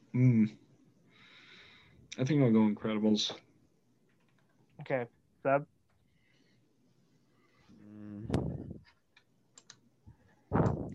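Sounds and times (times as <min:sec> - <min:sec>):
speech: 0:00.1 - 0:00.6, 0:02.2 - 0:03.5, 0:04.8 - 0:05.7
computer mouse and keyboard clicks: 0:09.1 - 0:09.8.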